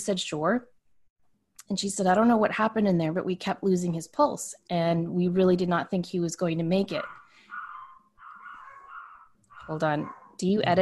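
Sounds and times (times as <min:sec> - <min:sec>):
speech: 0:00.0 - 0:00.7, 0:01.7 - 0:07.2, 0:09.6 - 0:10.8
small dogs barking in high-pitched whiny yelps: 0:06.9 - 0:10.8.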